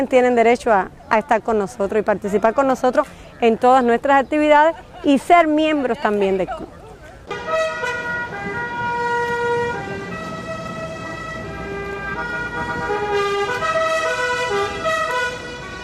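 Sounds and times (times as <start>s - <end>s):
speech: 0.0s - 6.8s
vehicle engines rumbling: 0.0s - 15.8s
car horns blaring in procession through Havana: 7.2s - 15.8s.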